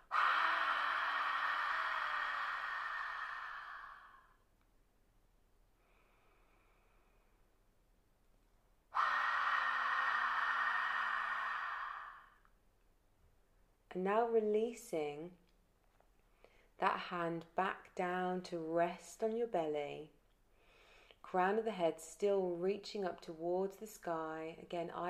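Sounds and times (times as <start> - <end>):
long sighing exhales with a faint voiced hum during belly-breathing: 0.0 - 4.4, 8.9 - 12.4
soft inhale through the nose during belly-breathing exercise: 5.8 - 7.5, 20.5 - 21.2
speech: 14.0 - 15.4, 16.9 - 20.2, 21.3 - 25.0.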